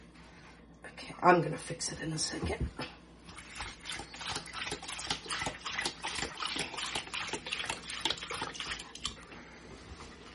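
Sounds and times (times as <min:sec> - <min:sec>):
speech: 0:01.2 - 0:02.9
tap water running into a bowl: 0:03.3 - 0:09.2.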